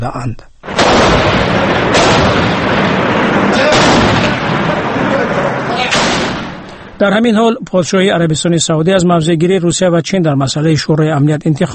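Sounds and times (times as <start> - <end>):
speech: 0.0 - 2.7, 7.0 - 11.7
Syrian army tank shelling blasts on the city of Homs: 0.6 - 7.3
sharp shrapnel bursts cracking: 0.6 - 7.3
dense loud rumbling background: 0.7 - 7.3.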